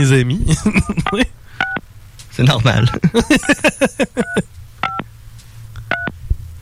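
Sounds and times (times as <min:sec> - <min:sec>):
speech: 0:00.0 - 0:01.8, 0:02.4 - 0:04.4
laughter: 0:00.4 - 0:01.3, 0:02.5 - 0:04.5
touch-tone keypad beeps from a mobile phone being dialed: 0:01.0 - 0:01.8, 0:04.2 - 0:05.0, 0:05.9 - 0:06.1.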